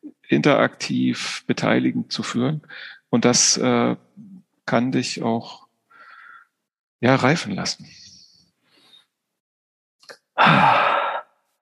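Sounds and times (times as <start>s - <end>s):
speech: 0.3s - 4.1s, 4.7s - 5.6s, 7.0s - 8.0s
short breath into a microphone: 2.7s - 3.1s, 5.9s - 6.6s, 8.6s - 9.1s, 10.4s - 11.4s.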